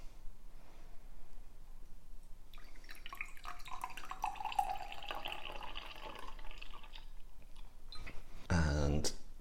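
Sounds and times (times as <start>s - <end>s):
cocktail strained from shaker trickling into a flute: 2.5s - 7.7s.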